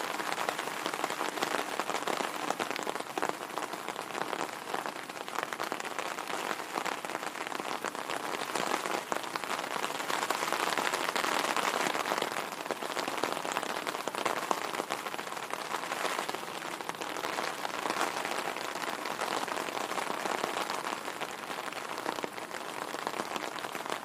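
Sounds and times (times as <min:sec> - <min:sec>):
rain on an umbrella: 0:00.0 - 0:24.0.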